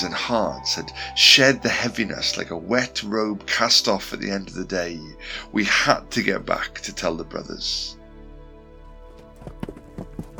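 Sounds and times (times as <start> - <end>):
speech: 0.0 - 8.0
horses approaching on a road at night, hooves pounding: 9.0 - 10.3.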